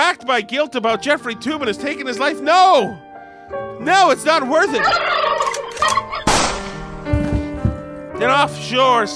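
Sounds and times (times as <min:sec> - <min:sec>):
speech: 0:00.2 - 0:06.0, 0:08.2 - 0:09.1
turkey gobbling: 0:04.7 - 0:06.9.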